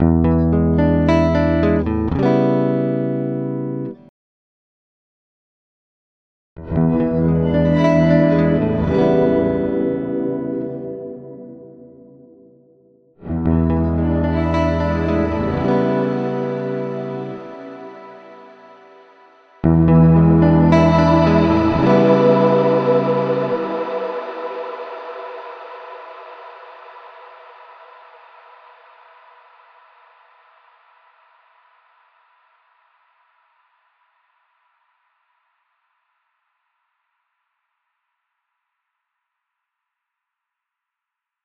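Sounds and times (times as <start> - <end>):
electric guitar: 0.0 - 4.0, 6.6 - 12.2, 13.2 - 27.2.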